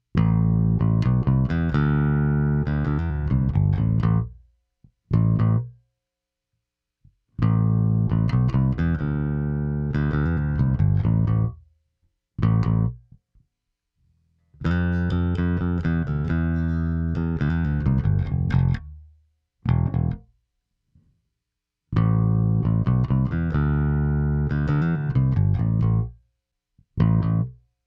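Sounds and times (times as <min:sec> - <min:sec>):
bright bass: 0:00.2 - 0:04.4, 0:05.1 - 0:05.7, 0:07.4 - 0:11.6, 0:12.4 - 0:13.0, 0:14.6 - 0:20.3, 0:22.0 - 0:26.2, 0:27.0 - 0:27.6.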